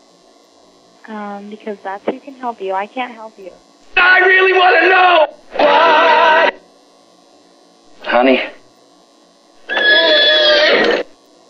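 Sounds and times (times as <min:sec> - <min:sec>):
speech: 0:01.0 - 0:06.0, 0:08.2 - 0:08.5
horse whinny with a wavering high-pitched neigh: 0:09.7 - 0:11.1.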